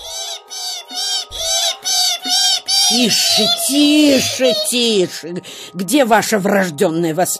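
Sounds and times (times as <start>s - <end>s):
goshawk chicks in the nest screeching for food: 0.0s - 4.8s
speech: 2.9s - 7.3s.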